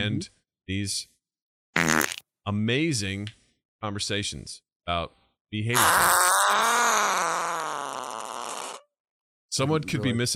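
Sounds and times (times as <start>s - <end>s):
speech: 0.0s - 1.1s, 1.8s - 6.7s, 9.6s - 10.3s
buzzy fart sound effect from a soundboard: 1.8s - 2.2s, 5.7s - 8.9s.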